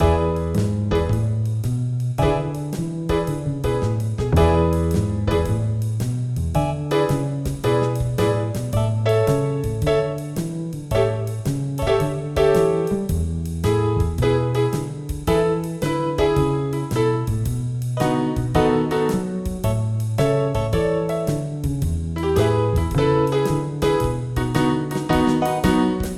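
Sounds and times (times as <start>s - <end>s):
blues music in E: 0.0s - 26.1s.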